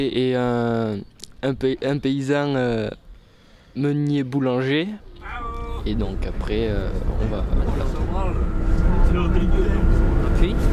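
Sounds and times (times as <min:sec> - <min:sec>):
speech: 0:00.0 - 0:03.0, 0:03.8 - 0:08.5, 0:09.1 - 0:10.7
steady low engine rumble of a moving bus: 0:05.2 - 0:10.7.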